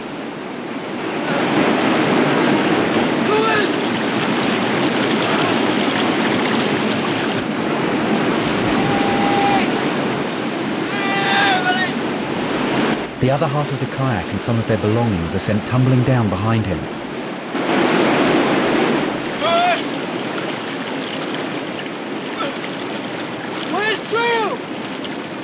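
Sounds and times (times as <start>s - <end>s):
white-water river pouring over a waterfall: 0.0s - 25.4s
faint shouts or calls: 3.2s - 3.8s, 8.6s - 9.8s, 10.8s - 12.0s, 19.4s - 20.0s, 22.4s - 22.7s, 23.7s - 24.7s
speech: 13.3s - 17.1s.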